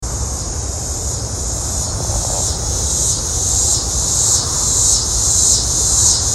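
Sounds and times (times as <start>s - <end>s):
cicada song: 0.1s - 6.3s.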